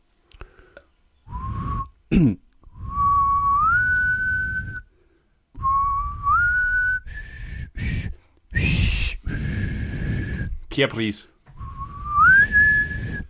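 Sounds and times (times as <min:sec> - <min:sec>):
person whistling a slow film theme melody: 0:01.3 - 0:02.0, 0:02.7 - 0:04.9, 0:05.6 - 0:10.6, 0:11.6 - 0:13.2
speech: 0:02.1 - 0:02.4, 0:10.8 - 0:11.4
person clearing throat: 0:02.1 - 0:02.5.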